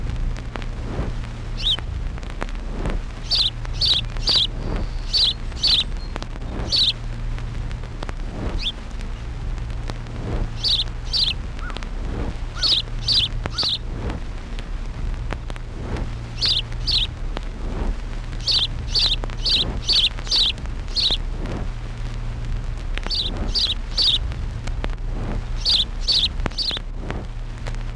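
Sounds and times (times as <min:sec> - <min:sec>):
steady hiss and low rumble of noise: 0:00.0 - 0:27.9
house sparrow chirping: 0:01.2 - 0:02.0, 0:03.0 - 0:14.3, 0:16.0 - 0:24.4, 0:25.3 - 0:26.9.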